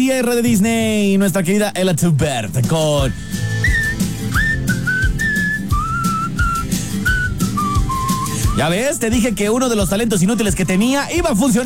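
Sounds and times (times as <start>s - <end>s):
speech: 0.0s - 3.5s, 8.6s - 11.6s
person whistling a clear wavering melody: 3.0s - 11.4s.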